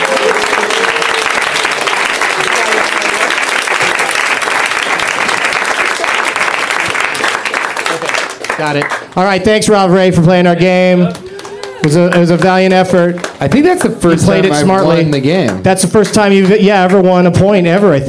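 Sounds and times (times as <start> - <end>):
crowd cheering: 0.0 - 9.0, 10.5 - 17.1
crowd clapping loudly: 0.0 - 9.2, 11.0 - 17.0
speech: 8.6 - 11.2, 11.8 - 18.0.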